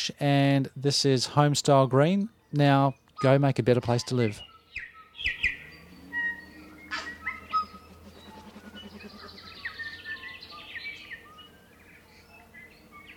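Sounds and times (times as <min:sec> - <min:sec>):
speech: 0:00.0 - 0:04.5, 0:05.2 - 0:05.6
dawn chorus of many birds singing and chirping: 0:02.0 - 0:13.1
low steady hum: 0:05.2 - 0:13.1.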